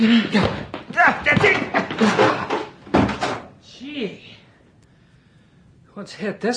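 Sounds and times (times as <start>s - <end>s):
speech: 0.0s - 2.2s, 6.0s - 6.5s
locked flat door being broken down: 1.2s - 3.5s.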